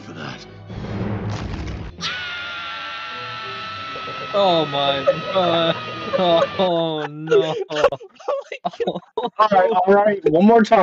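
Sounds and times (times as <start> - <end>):
rumbling crashing burst: 0.7 - 2.0
cartoon character scream sound effect: 2.0 - 7.1
laughter: 2.0 - 10.6
speech: 4.4 - 10.8.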